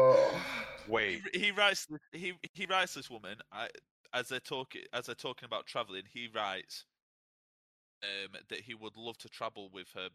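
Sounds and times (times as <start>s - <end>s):
dramatic gasp: 0.0s - 0.9s
speech: 0.1s - 6.9s, 8.0s - 10.1s.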